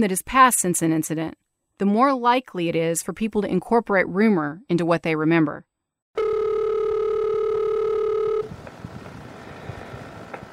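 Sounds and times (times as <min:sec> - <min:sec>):
speech: 0:00.0 - 0:05.7
electronic telephone ringing tone before a call: 0:06.2 - 0:08.6.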